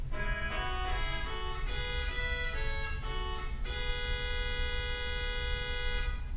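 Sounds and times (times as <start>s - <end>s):
theatre organ: 0.1s - 6.2s
orchestral oboe: 0.1s - 6.3s.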